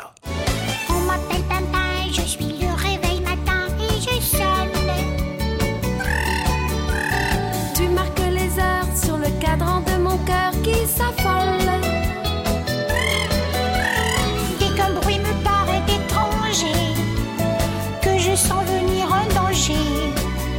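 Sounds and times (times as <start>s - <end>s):
loud bouncy musical backing: 0.4s - 20.4s
singer vocally imitating an alarm clock ringing: 6.0s - 7.4s, 13.0s - 14.3s.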